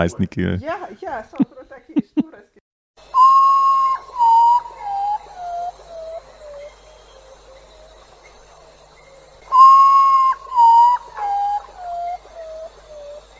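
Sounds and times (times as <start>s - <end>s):
speech: 0.0s - 1.5s
potoo mournful whistling call: 3.1s - 7.2s, 9.4s - 13.3s.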